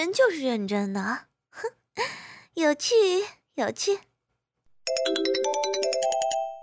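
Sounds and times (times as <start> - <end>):
speech: 0.1 - 1.7, 2.6 - 4.1
mobile phone ringtone, quick electronic melody: 4.9 - 6.6.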